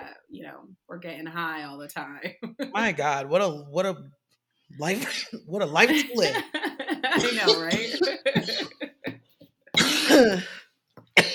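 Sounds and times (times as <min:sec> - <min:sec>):
speech: 0:00.5 - 0:08.8, 0:10.1 - 0:10.6
harsh hacking coughing: 0:04.8 - 0:06.4, 0:07.1 - 0:08.8, 0:09.8 - 0:10.6, 0:11.2 - 0:11.3
laughter: 0:04.8 - 0:09.1.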